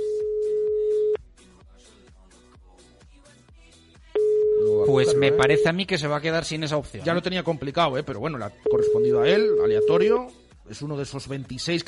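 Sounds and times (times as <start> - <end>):
unanswered telephone ringback tone: 0.0 - 1.2, 4.2 - 5.7, 8.7 - 10.1
rhythmic music bed: 0.0 - 5.8, 7.0 - 10.8
speech: 5.0 - 11.8.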